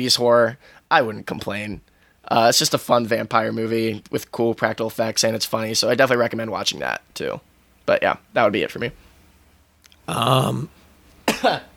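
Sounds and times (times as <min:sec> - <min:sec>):
speech: 0:00.0 - 0:09.0, 0:10.1 - 0:10.8, 0:11.4 - 0:11.7
person clearing throat: 0:10.1 - 0:10.7, 0:11.3 - 0:11.7.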